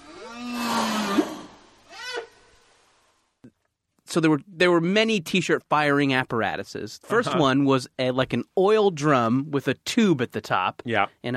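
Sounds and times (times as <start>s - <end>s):
whale calls: 0.0s - 2.9s
speech: 4.1s - 11.3s.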